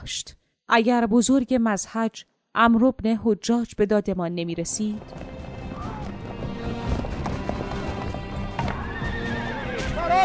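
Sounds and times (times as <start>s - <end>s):
speech: 0.0s - 5.3s
horses of approaching riders galloping in the desert: 5.0s - 10.2s
horse whinny: 8.6s - 10.0s.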